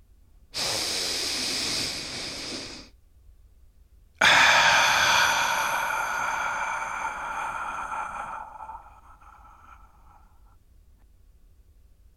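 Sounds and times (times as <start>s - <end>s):
deep breath: 0.5s - 3.0s, 4.2s - 10.6s.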